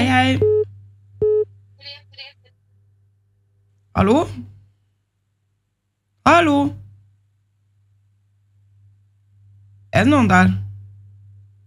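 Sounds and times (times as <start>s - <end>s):
low electrical hum: 0.0s - 11.6s
speech: 0.2s - 0.5s, 4.0s - 4.5s, 6.3s - 6.8s, 10.0s - 10.6s
telephone line tone of an incoming call beeping: 1.2s - 1.5s.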